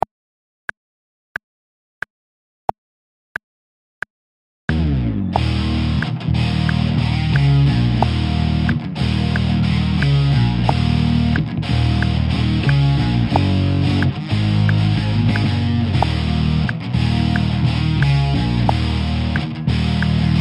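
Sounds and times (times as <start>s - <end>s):
24 bar blues rock music: 4.7s - 20.3s.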